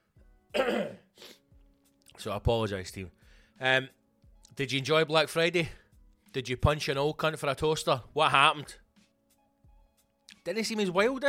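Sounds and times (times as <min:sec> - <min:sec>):
person coughing with a harsh hacking cough: 0:00.5 - 0:01.4
speech: 0:00.6 - 0:01.3, 0:02.2 - 0:08.8, 0:10.4 - 0:11.2.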